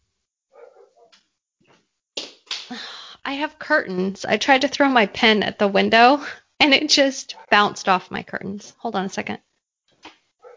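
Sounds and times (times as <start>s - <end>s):
dog barking and yelping: 0.5s - 1.1s, 7.3s - 7.6s, 10.4s - 10.5s
speech: 2.7s - 9.5s.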